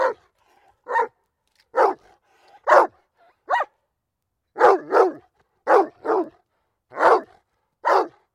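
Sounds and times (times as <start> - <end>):
dog barking: 0.0 - 3.8, 4.6 - 8.2.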